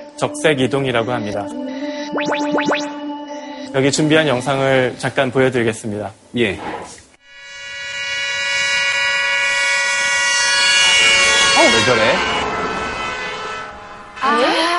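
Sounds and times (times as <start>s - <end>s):
speech: 0.2s - 3.0s, 3.6s - 6.9s, 11.7s - 12.3s
wailing vehicle siren passing by with Doppler shift: 7.3s - 14.4s
rushing noise: 10.4s - 14.6s.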